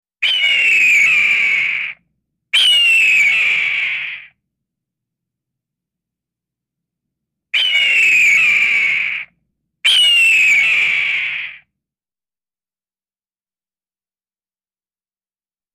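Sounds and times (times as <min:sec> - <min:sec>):
hawk harsh drawn-out screams: 0:00.2 - 0:02.0, 0:02.6 - 0:04.4, 0:07.6 - 0:11.7.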